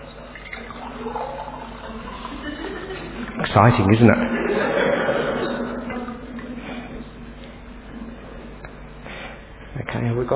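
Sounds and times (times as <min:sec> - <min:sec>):
water pouring into a glass: 0:00.0 - 0:02.6
laughter: 0:02.2 - 0:07.1
speech: 0:03.6 - 0:04.6.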